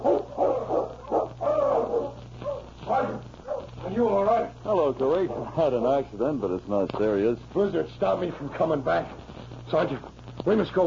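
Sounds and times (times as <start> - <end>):
sled dog team barking and yelping: 0.0 - 3.8
steady low hum: 0.0 - 10.8
speech: 5.0 - 10.8.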